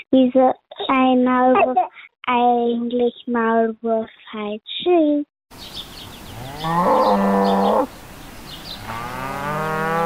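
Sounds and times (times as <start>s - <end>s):
speech: 0.0s - 5.8s, 6.6s - 8.0s
cows mooing on a cow meadow in the countryside: 6.4s - 7.9s, 8.8s - 10.0s.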